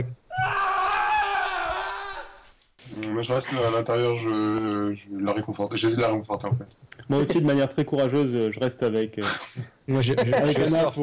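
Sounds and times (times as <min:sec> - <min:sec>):
person screaming in terror: 0:00.3 - 0:02.4
speech: 0:03.2 - 0:11.0
laughter: 0:10.0 - 0:10.9.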